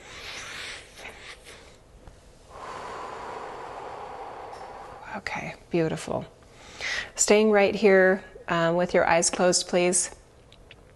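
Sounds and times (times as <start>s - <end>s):
person taking a slow deep breath in and out: 0.0s - 5.5s
speech: 5.2s - 6.4s, 7.2s - 10.2s.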